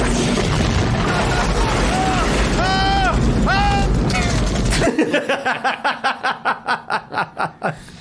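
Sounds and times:
video game grenade launcher explosions: 0.0s - 5.2s
laughter: 4.7s - 7.9s.

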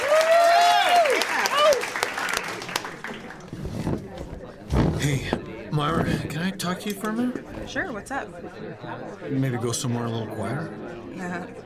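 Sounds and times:
scattered cheers: 0.0s - 2.4s
crowd clapping: 0.0s - 3.6s
speech: 5.8s - 11.6s.

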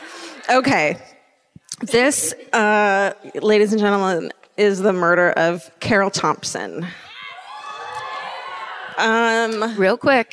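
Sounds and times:
speech: 0.5s - 1.1s, 1.8s - 7.0s, 9.0s - 10.3s
crowd cheering and whooping: 7.0s - 9.6s.

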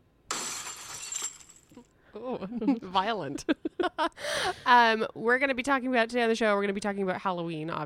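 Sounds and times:
breaking glass crash: 0.3s - 1.9s
glass pieces tinkling as they scatter and settle: 0.3s - 1.9s
speech: 2.2s - 7.8s.

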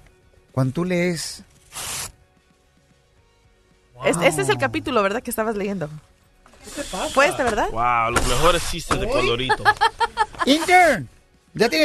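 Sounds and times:
speech: 0.6s - 1.5s, 4.1s - 6.1s, 6.7s - 11.8s
page torn from a book: 1.6s - 2.1s
laughter: 9.0s - 11.0s.

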